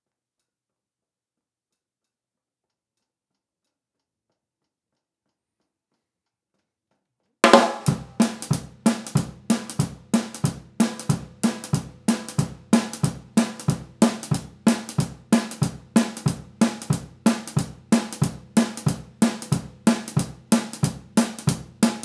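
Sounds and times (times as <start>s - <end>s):
drums from overhead left microphone: 7.4s - 22.0s.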